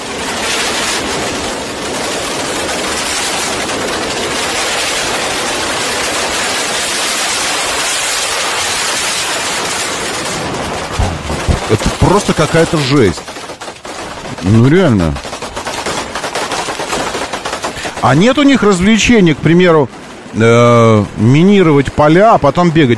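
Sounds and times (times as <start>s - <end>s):
barrage of explosions out on the street: 0.0s - 22.9s
separate bangs: 10.5s - 20.4s
speech: 12.1s - 13.3s, 14.4s - 15.2s, 18.0s - 22.9s.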